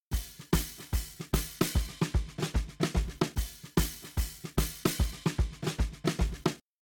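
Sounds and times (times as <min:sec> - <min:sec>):
shuffle drum beat: 0:00.0 - 0:06.6
open hi-hat: 0:00.1 - 0:06.6.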